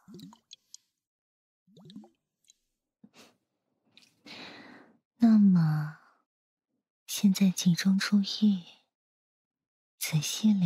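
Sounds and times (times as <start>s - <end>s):
liquid dripping and plopping: 0.0s - 0.8s, 1.7s - 2.6s
liquid flowing and squishing: 0.0s - 0.9s
speech: 7.3s - 8.7s, 10.1s - 10.6s.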